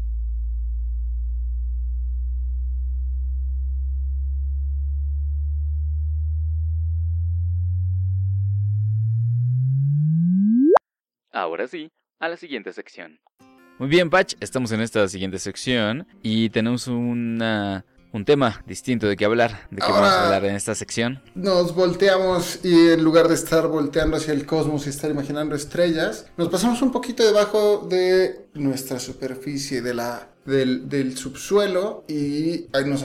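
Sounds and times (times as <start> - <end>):
gravitational wave signal rendered as a rising tone and chirp: 0.2 - 10.8
speech: 11.5 - 33.0.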